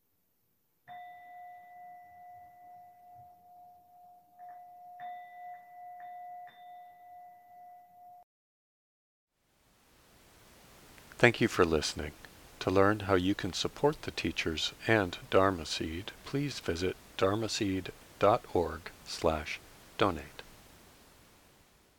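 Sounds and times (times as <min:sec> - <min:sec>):
bell struck slowly: 0:00.9 - 0:08.2
soft hiss: 0:09.4 - 0:21.9
speech: 0:11.2 - 0:20.4.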